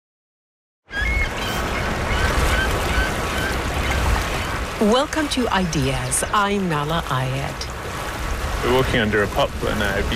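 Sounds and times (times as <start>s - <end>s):
harsh buzzy bird calls beneath a poplar tree on a sunny spring day: 0.9s - 4.6s
speech: 4.8s - 7.8s, 8.6s - 10.1s.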